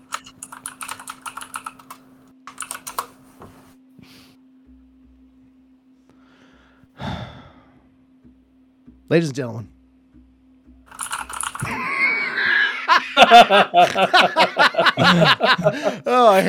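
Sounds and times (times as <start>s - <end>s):
loud typing on a computer keyboard: 0.0s - 3.1s, 10.9s - 11.7s
heavy sigh: 6.2s - 7.9s
speech: 9.1s - 9.8s, 13.3s - 16.4s
laughter: 11.6s - 16.4s.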